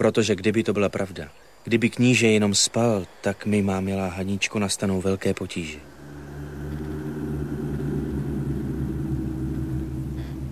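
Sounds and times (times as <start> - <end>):
speech: 0.0 - 6.0
distant thunder rumbling in the mountains: 5.8 - 10.4.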